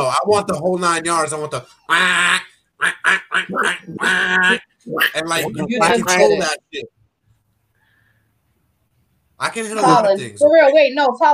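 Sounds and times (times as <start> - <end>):
speech: 0.2 - 7.0, 9.4 - 11.3
person imitating a duck quacking: 1.9 - 6.2.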